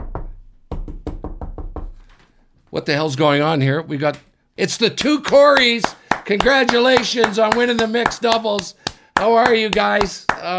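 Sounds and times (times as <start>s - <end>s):
firm knocking on a door: 0.0s - 2.1s
speech: 2.7s - 10.5s.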